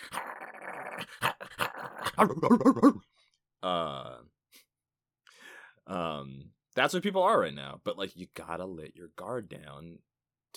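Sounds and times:
person imitating a small dog growling: 0.0 - 3.0
speech: 2.2 - 4.3, 6.8 - 10.5.

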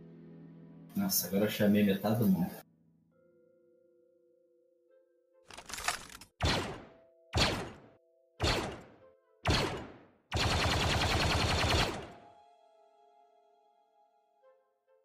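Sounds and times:
speech: 1.0 - 2.6
loud gunshots: 6.4 - 12.2
sustained burst of automatic fire: 9.5 - 12.1.

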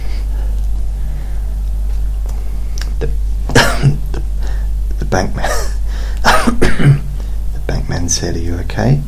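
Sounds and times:
steady low hum: 0.0 - 9.0
person coughing: 3.5 - 4.2, 5.4 - 7.1
speech: 5.1 - 7.0, 7.7 - 9.0.

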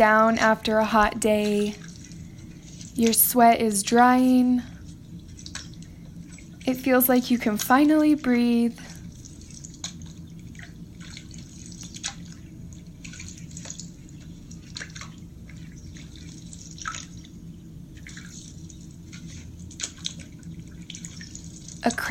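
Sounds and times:
speech: 0.0 - 1.8, 3.0 - 4.7, 6.7 - 8.9
paddles dipping in and out of calm lake water: 0.0 - 8.1, 8.9 - 22.1.

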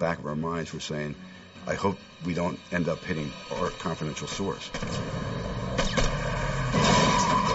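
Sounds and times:
speech: 0.0 - 5.6
gunshots: 4.7 - 7.5.

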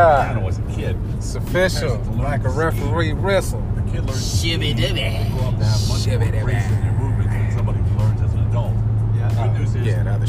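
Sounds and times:
speech: 0.0 - 7.1, 9.7 - 10.2
car driving on a highway with engine and tire noise: 0.0 - 10.2.

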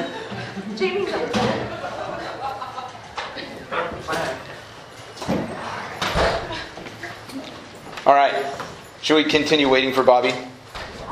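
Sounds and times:
laughter: 0.0 - 4.1
speech: 0.8 - 1.8, 8.1 - 10.5
door being pushed shut and locked: 5.2 - 6.5.

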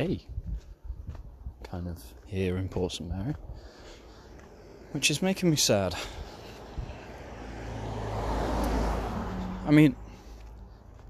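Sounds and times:
speech: 0.0 - 0.4, 1.7 - 3.8, 4.9 - 6.2, 9.6 - 10.0
car engine and tyre rumble: 0.0 - 11.0
car passing on a road: 3.4 - 11.0.

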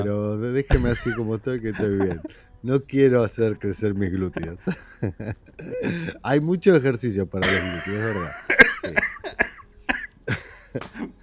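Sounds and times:
speech: 0.0 - 9.1
laughter: 0.7 - 2.4, 3.3 - 6.4, 7.4 - 11.2
person coughing sharply: 7.4 - 7.9, 8.6 - 10.4.

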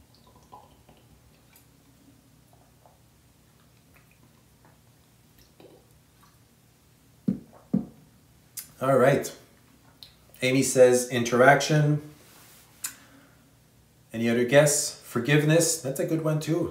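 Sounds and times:
person sipping water: 0.1 - 6.5
speech: 8.8 - 9.4, 10.4 - 12.1, 14.2 - 16.7.

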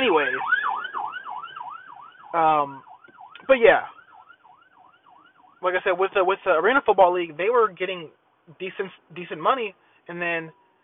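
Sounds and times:
emergency vehicle siren yelping: 0.0 - 6.8, 10.5 - 10.8
speech: 0.1 - 0.6, 2.3 - 2.9, 3.5 - 4.0, 5.6 - 10.6.

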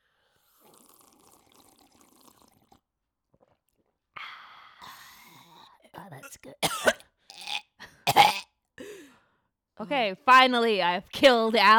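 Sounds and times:
coffee being drunk with wet noisy slurping: 0.4 - 4.0
swallowing: 0.4 - 4.0, 4.8 - 8.4
speech: 6.4 - 6.9, 9.8 - 11.7.

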